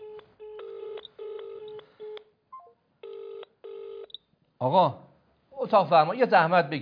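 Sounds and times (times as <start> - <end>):
push-button telephone keypad tones: 0.0 - 4.2
speech: 4.6 - 6.7.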